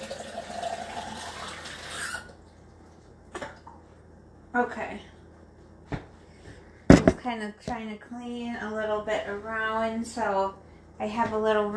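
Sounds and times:
water pouring into a glass for a refill: 0:00.0 - 0:02.7
speech: 0:04.6 - 0:05.1, 0:07.2 - 0:11.7.

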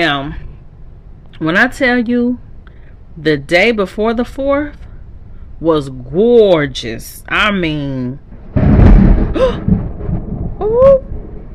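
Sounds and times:
speech: 0:00.0 - 0:00.5, 0:01.4 - 0:02.4, 0:03.2 - 0:04.8, 0:05.6 - 0:08.3, 0:09.3 - 0:09.8, 0:10.6 - 0:11.1
thunder rumbling outside a window during a storm: 0:08.3 - 0:11.5
person making brief vocal sounds: 0:09.4 - 0:09.7.

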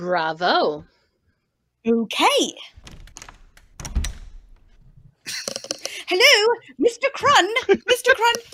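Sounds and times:
speech: 0:00.0 - 0:01.0, 0:01.8 - 0:03.0, 0:06.1 - 0:08.5
locked window rattling: 0:02.7 - 0:05.1.

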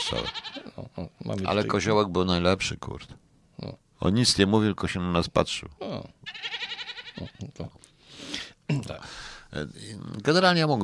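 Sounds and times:
sheep bleating in a played recording: 0:00.0 - 0:00.8, 0:05.9 - 0:07.6
speech: 0:00.1 - 0:10.8.

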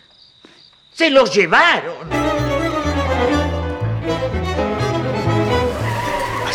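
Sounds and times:
speech: 0:01.0 - 0:02.2
car engine accelerating through gear changes: 0:02.2 - 0:06.5.

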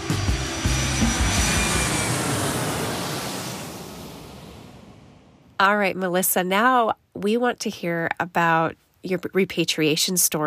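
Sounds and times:
airplane taking off: 0:00.0 - 0:05.6
speech: 0:05.6 - 0:10.4.

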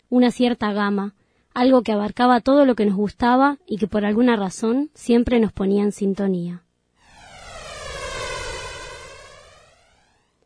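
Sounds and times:
speech: 0:00.1 - 0:06.6
aircraft engine roaring as a plane takes off and passes overhead: 0:07.0 - 0:10.3.

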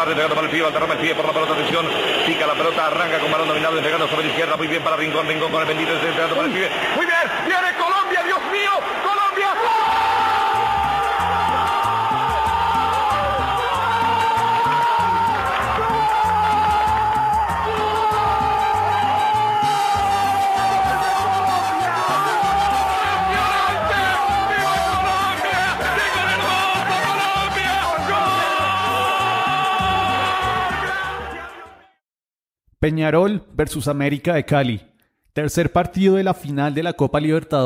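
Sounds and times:
speech: 0:00.0 - 0:07.9, 0:32.8 - 0:37.6
huge stadium crowd roaring after a football goal: 0:00.0 - 0:32.0
long sustained shout: 0:08.6 - 0:31.8.

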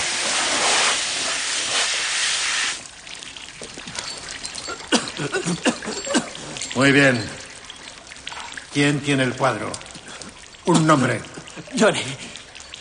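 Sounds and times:
water spraying from a hose: 0:00.0 - 0:07.2
speech: 0:05.2 - 0:06.0, 0:06.8 - 0:07.4, 0:08.7 - 0:09.9, 0:10.7 - 0:12.3.

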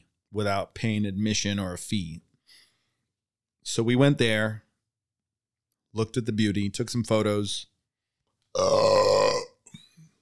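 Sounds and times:
speech: 0:00.3 - 0:02.3, 0:03.6 - 0:04.6, 0:06.0 - 0:07.7, 0:08.5 - 0:09.1
loud drawn-out belch: 0:08.6 - 0:09.6.

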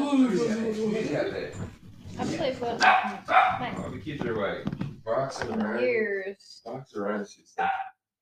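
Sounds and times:
speech: 0:00.2 - 0:08.2
dog barking excitedly: 0:02.8 - 0:03.8, 0:07.6 - 0:08.2.

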